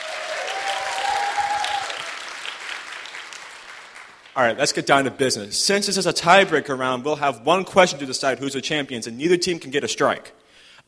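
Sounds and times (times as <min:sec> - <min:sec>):
audience applause: 0:00.0 - 0:04.4
speech: 0:04.4 - 0:10.8.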